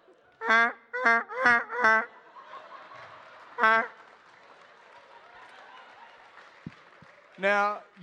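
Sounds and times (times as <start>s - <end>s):
person imitating the mating call of a duck with nasal quacks: 0.4s - 2.2s, 3.6s - 4.0s
speech: 0.5s - 1.7s, 7.4s - 7.8s
laughter: 1.7s - 6.4s.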